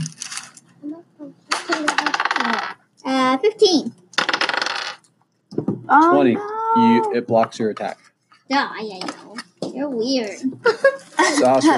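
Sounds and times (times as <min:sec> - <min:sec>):
twenty-sided die clattering and rattling across a hard surface: 0:01.5 - 0:02.8, 0:04.2 - 0:05.8
speech: 0:03.4 - 0:04.0, 0:05.9 - 0:11.7.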